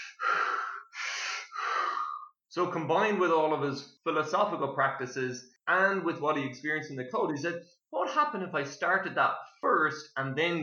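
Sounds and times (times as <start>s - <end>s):
person imitating panicked gasping breaths from cold-water shock: 0.0s - 2.4s
speech: 2.6s - 10.6s.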